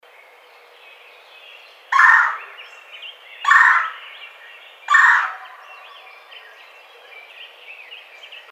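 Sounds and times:
red-bellied woodpecker churring calls: 0:01.9 - 0:02.6, 0:03.4 - 0:04.0, 0:04.9 - 0:06.0.

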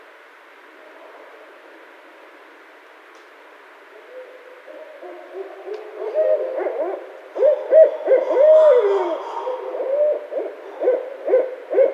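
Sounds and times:
Barred owl hooting and cackling: 0:06.0 - 0:11.9.

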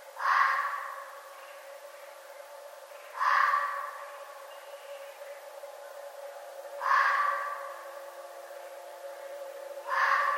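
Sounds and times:
red fox rasping drawn-out scream: 0:00.2 - 0:01.1, 0:03.2 - 0:04.0, 0:06.8 - 0:07.8, 0:09.9 - 0:10.3.

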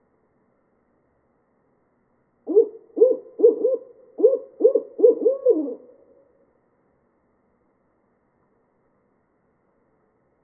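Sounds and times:
barred owl calling with hoots: 0:02.5 - 0:06.3.

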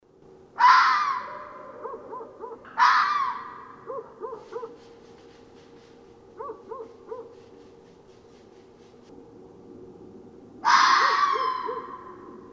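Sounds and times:
red fox giving harsh hoarse screams: 0:00.6 - 0:04.8, 0:10.6 - 0:12.5
red fox giving quick triplets of short yaps: 0:00.6 - 0:04.9, 0:06.3 - 0:07.5, 0:10.6 - 0:12.3.

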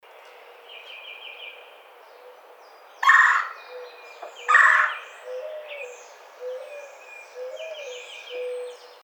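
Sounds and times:
red-bellied woodpecker harsh rolling calls: 0:03.0 - 0:05.4.

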